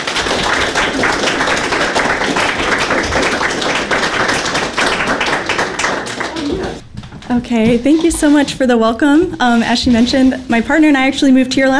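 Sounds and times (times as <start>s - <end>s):
audience clapping for a reader at a reading: 0.0s - 6.8s
speech: 7.3s - 11.7s.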